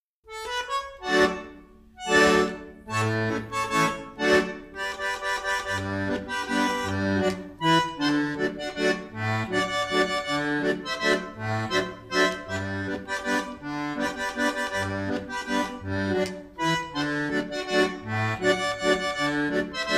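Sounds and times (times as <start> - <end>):
Chiemgau folk music Ländler dance: 0.3 - 19.9.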